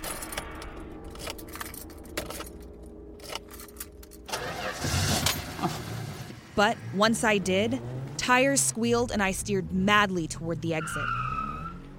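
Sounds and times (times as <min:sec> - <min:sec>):
keys fumbling at a car ignition: 0:00.0 - 0:04.3
car engine cranking and starting: 0:04.1 - 0:11.9
speech: 0:06.6 - 0:11.2.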